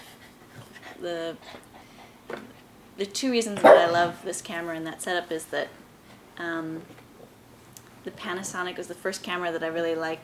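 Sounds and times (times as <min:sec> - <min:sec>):
speech: 0:01.0 - 0:01.7, 0:02.3 - 0:05.8, 0:06.4 - 0:07.0, 0:08.0 - 0:10.2
dog barking at a toy: 0:03.6 - 0:04.1.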